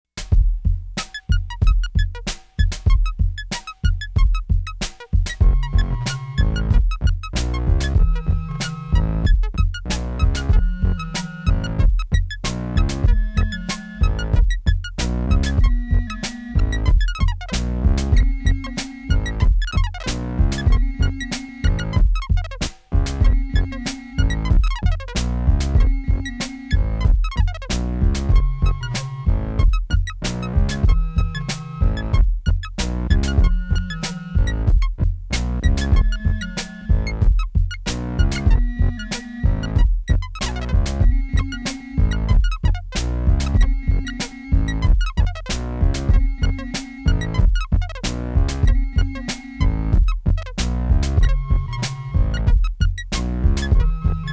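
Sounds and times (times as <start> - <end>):
synthesizer: 0.2 - 54.3.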